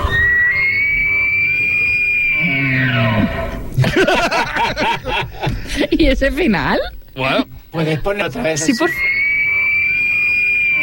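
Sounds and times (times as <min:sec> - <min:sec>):
Silbo Gomero whistled language: 0:00.0 - 0:03.6, 0:08.5 - 0:10.8
harsh rising-and-falling animal-like calls: 0:00.0 - 0:03.8, 0:08.8 - 0:10.8
laughter: 0:03.7 - 0:06.0
speech: 0:06.0 - 0:09.1.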